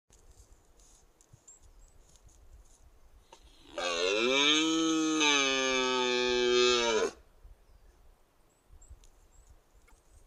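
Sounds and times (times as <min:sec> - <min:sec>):
rutting red deer bellowing: 0:03.5 - 0:07.2.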